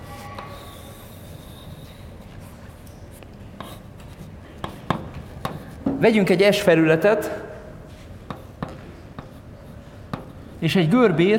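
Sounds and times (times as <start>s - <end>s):
pen drawing a loop on a board: 3.6s - 5.8s, 8.2s - 10.5s
speech: 6.0s - 7.5s, 10.6s - 11.3s.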